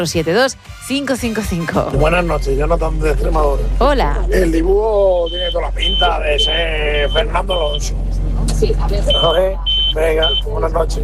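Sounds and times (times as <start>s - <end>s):
speech: 0.0s - 11.0s
low rumble: 1.9s - 11.0s
talking over a phone line: 1.9s - 11.0s
shrill steady alarm tone beeping: 3.8s - 8.0s, 8.7s - 10.6s.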